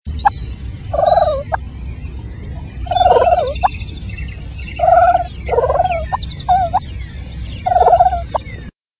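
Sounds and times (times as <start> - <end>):
wild turkey purring: 0.9 - 1.5, 2.9 - 3.7, 4.7 - 6.8, 7.6 - 8.4.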